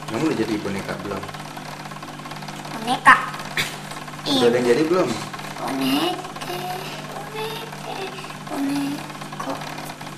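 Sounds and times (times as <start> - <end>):
sewing machine running: 0.0 - 10.1
speech: 0.1 - 1.5, 2.8 - 9.8.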